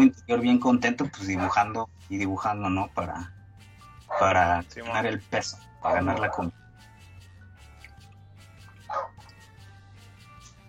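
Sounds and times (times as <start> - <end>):
speech: 0.0 - 3.4, 4.1 - 6.6
dog barking: 4.1 - 4.4, 8.8 - 9.2.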